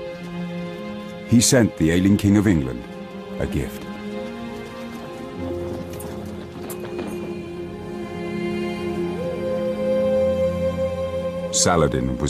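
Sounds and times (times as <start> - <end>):
steady droning musical bed: 0.0 - 12.2
speech: 1.3 - 3.8, 11.6 - 12.2
horse hooves clip-clopping: 2.6 - 8.1.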